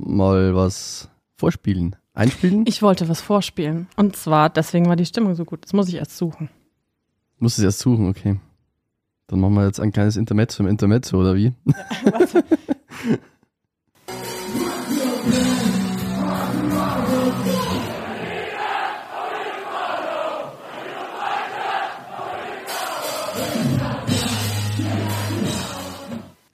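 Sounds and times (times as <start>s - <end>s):
speech: 0.1s - 6.6s, 7.4s - 8.5s, 9.3s - 13.3s, 14.5s - 15.8s
laughter: 11.7s - 13.3s
punk concert audience singing along and shouting: 14.2s - 26.4s.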